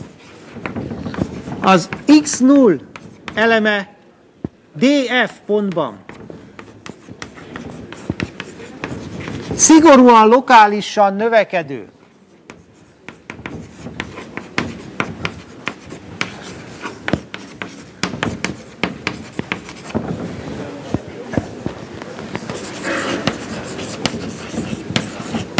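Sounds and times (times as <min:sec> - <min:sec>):
handwriting scratches and taps during a mathematics lecture: 0:00.0 - 0:03.5, 0:05.3 - 0:09.6, 0:12.5 - 0:20.2, 0:20.9 - 0:25.5
speech: 0:01.6 - 0:03.9, 0:04.8 - 0:06.0, 0:09.6 - 0:12.0.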